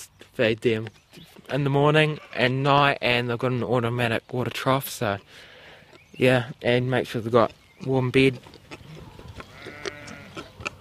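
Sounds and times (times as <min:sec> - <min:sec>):
speech: 0:00.1 - 0:05.5, 0:06.2 - 0:08.6
Suffolk stud sheep bleating on a farm: 0:09.4 - 0:10.5.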